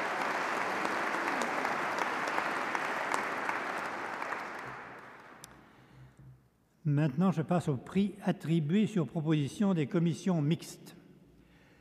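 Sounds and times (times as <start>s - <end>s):
audience applause for an award laureate: 0.0s - 5.5s
speech: 6.9s - 11.0s.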